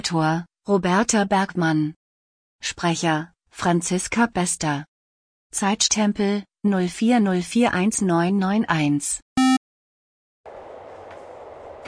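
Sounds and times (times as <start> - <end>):
speech: 0.0 - 2.0, 2.6 - 4.9, 5.5 - 9.2
short loud electronic beep: 9.4 - 9.6.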